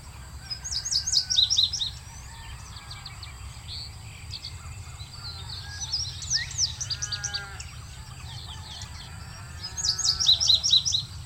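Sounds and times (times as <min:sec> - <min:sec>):
male indigo bunting singing from a telephone wire in open grassland: 0:00.0 - 0:11.2.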